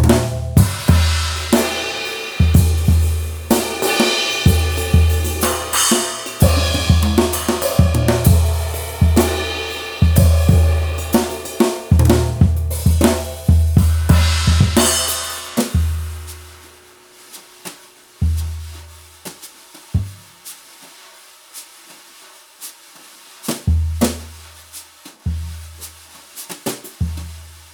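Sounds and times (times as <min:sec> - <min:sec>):
brushes: 0:00.2 - 0:27.7.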